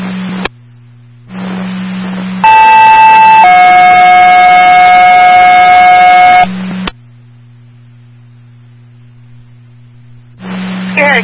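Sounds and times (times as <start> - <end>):
low electrical buzz: 0.0 - 11.2
bursts of radio static: 1.3 - 6.9, 10.4 - 11.2
emergency dispatch paging tone: 2.4 - 6.5.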